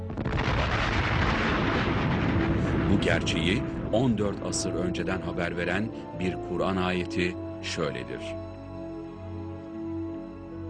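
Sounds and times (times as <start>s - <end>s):
roaring explosion sound effect evoking the Big Bang: 0.0s - 4.5s
speech: 2.9s - 8.4s.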